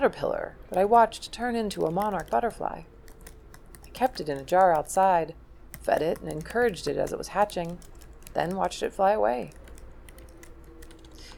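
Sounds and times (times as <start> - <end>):
speech: 0.0 - 2.9, 4.0 - 9.6
low hum: 0.0 - 11.3
typing on a computer keyboard: 0.7 - 5.1, 5.7 - 11.3.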